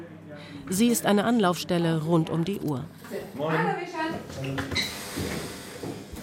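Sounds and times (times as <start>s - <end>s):
speech: 0.7s - 5.4s
clunk and creak of guest room door being pushed open: 4.4s - 6.2s.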